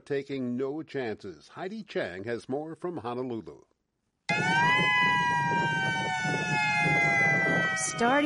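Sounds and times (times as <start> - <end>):
speech: 0.1 - 3.7, 6.2 - 8.2
attack warning siren wailing: 4.3 - 8.2.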